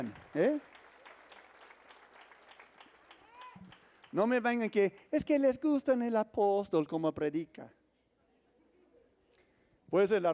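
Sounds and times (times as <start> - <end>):
speech: 0.0 - 0.7, 4.1 - 7.8, 9.9 - 10.3
audience clapping: 0.0 - 5.1
people whooping: 3.1 - 3.8.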